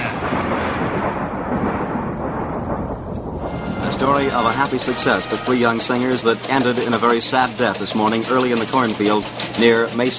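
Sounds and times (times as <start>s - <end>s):
thunder rumbling: 0.0s - 7.5s
speech: 4.0s - 10.1s.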